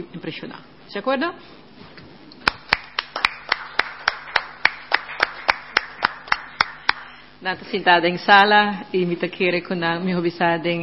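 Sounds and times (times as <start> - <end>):
speech: 0.0 - 2.0, 7.4 - 10.8
faint hum: 0.0 - 10.8
council members clapping: 2.4 - 7.2.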